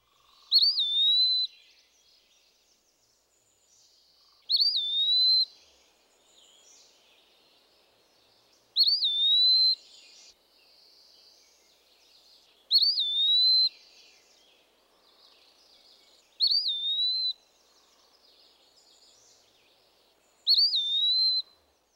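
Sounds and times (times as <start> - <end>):
Eastern Wood Pewee singing plaintive whistled song: 0.4 - 1.9, 4.5 - 5.7, 8.8 - 10.3, 12.7 - 14.4, 16.4 - 17.4, 20.4 - 21.6.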